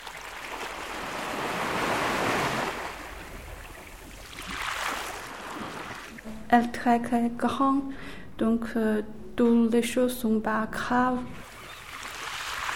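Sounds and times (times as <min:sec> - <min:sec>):
sea waves rolling and washing: 0:00.0 - 0:06.2, 0:11.4 - 0:12.7
speech: 0:06.5 - 0:11.5.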